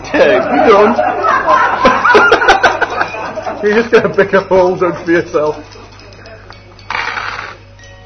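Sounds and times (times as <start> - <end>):
laughter: 0.1 - 4.5
speech: 0.2 - 1.6, 3.6 - 5.8
dice being rolled: 6.9 - 7.6.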